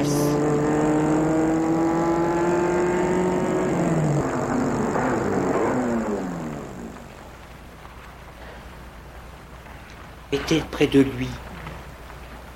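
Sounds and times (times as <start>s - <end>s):
car engine roaring as it passes by: 0.0s - 7.5s
speech: 10.4s - 11.4s.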